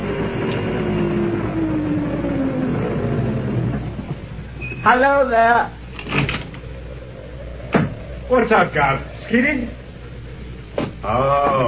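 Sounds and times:
low rumble: 0.0 - 4.7, 5.3 - 11.6
car engine approaching: 0.0 - 11.6
speech: 4.8 - 6.2, 8.3 - 9.8, 11.0 - 11.6.

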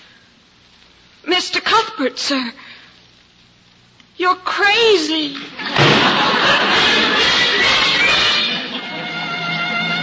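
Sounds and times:
speech: 1.2 - 2.6, 4.2 - 7.0
laughter: 5.5 - 10.0
door slamming shut: 5.7 - 6.3.

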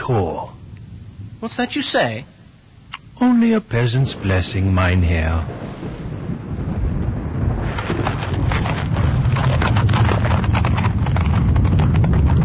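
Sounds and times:
constant low rumble: 0.0 - 12.4
speech: 0.1 - 0.6, 1.4 - 2.4, 3.2 - 5.7
horse hooves clip-clopping on a road: 7.6 - 12.4.

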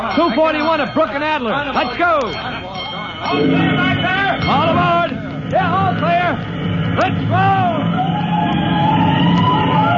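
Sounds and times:
speech: 0.2 - 2.6, 3.2 - 9.1
fire engine siren wailing as the truck rolls out to a call: 2.2 - 9.9.

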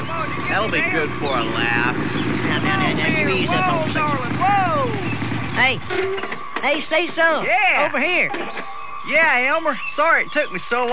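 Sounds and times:
motorcycle engine revving and approaching: 0.0 - 6.5
speech: 0.4 - 10.9.

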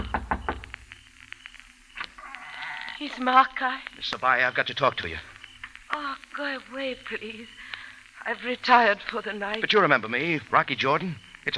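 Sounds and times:
knocking on the door of a house in the hills at night: 0.0 - 0.7
speech: 3.0 - 5.3, 6.0 - 11.5.

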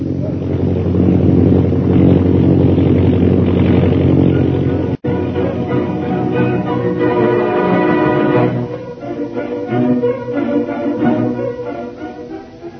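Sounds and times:
propeller airplane flying overhead: 0.0 - 12.7.

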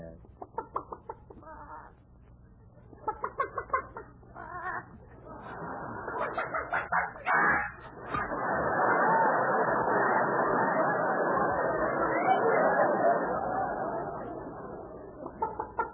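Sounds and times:
hen clucking and squawking: 0.2 - 2.0, 2.9 - 8.3, 15.2 - 15.9
laughter: 2.8 - 15.9.

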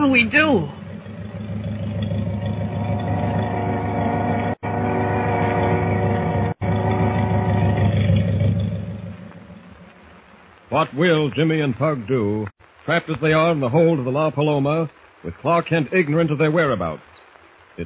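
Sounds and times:
speech: 0.0 - 0.8, 10.8 - 17.1
boat motors droning as boat pulls out: 0.0 - 10.4.

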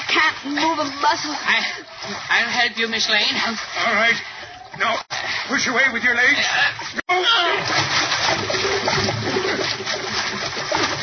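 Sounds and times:
water splashing as a boat sinks: 0.0 - 11.0
speech: 0.3 - 10.8.

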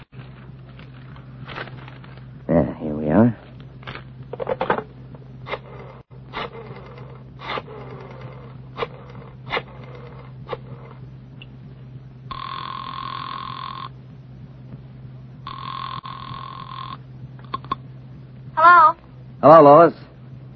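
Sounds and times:
pages of a telephone book being flipped: 0.0 - 2.3
low steady hum: 0.0 - 20.5
speech: 19.5 - 20.0.

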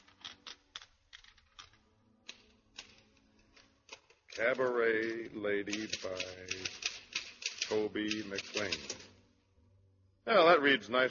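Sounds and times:
typewriter key strikes: 3.9 - 9.1
speech: 4.4 - 6.8, 7.7 - 9.1, 10.3 - 11.1.

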